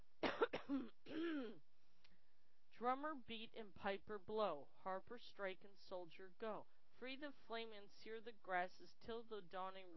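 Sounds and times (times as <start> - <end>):
man clearing throat: 0.2 - 1.6
speech: 2.8 - 9.9.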